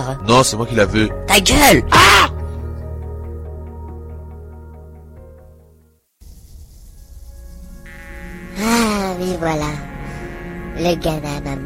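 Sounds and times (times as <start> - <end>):
speech: 0.0 - 2.3, 10.8 - 11.6
flies buzzing: 6.2 - 11.6.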